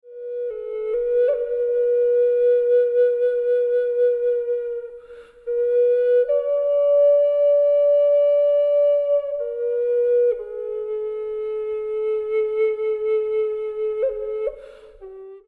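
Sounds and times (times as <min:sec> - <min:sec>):
Indian flute: 0:00.0 - 0:15.4.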